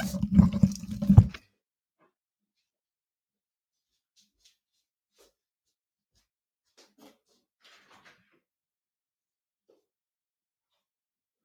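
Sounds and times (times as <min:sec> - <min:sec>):
water running and splashing as someone fetches water: 0:00.0 - 0:01.4.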